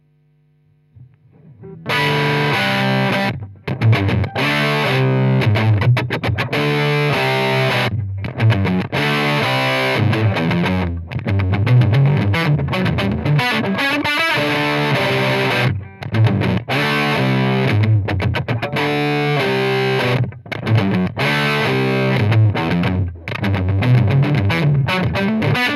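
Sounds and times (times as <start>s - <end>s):
6L6 tube amplifier distortion: 0.0s - 25.7s.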